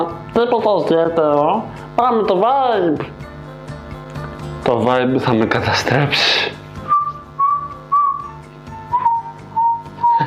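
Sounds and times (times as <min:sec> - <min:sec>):
speech: 0:00.0 - 0:03.3, 0:04.7 - 0:06.5
rhythmic thumping accompaniment: 0:00.0 - 0:10.2
person whistling a simple melody: 0:06.8 - 0:10.2.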